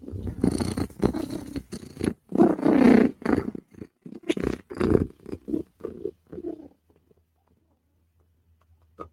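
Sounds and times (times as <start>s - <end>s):
big female cat purring: 0.0s - 6.8s.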